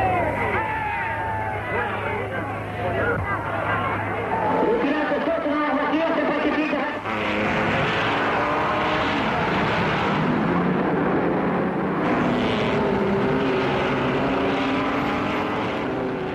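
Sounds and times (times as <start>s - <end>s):
crowd chatter at the Le Mans motor racing circuit in France: 0.0s - 7.8s
steady mechanical engine drone at the Le Mans motor racing circuit: 0.0s - 16.3s.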